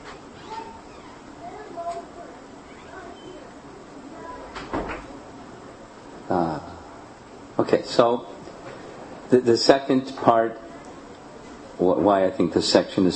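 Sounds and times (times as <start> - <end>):
door swinging shut: 0.0 - 2.0, 2.7 - 3.5, 4.4 - 5.2
faint room murmur: 0.0 - 13.1
speech: 7.7 - 8.3, 9.3 - 10.6, 11.8 - 13.1.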